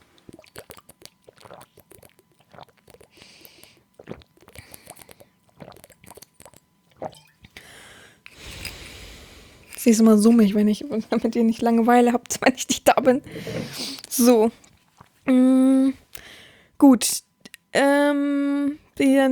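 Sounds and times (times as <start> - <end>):
person sipping a drink: 0.1 - 9.8, 13.2 - 15.1
soft swallows: 0.2 - 7.6, 13.2 - 15.1
small mouth clicks: 0.3 - 7.6
speech: 9.8 - 14.6, 16.9 - 18.3, 19.1 - 19.3.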